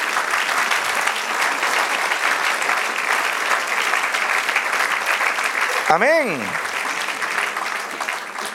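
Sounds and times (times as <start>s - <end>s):
large crowd applauding in praise of God: 0.0s - 8.5s
single voice calling out an exclamation: 5.8s - 6.6s
speech: 5.9s - 6.7s.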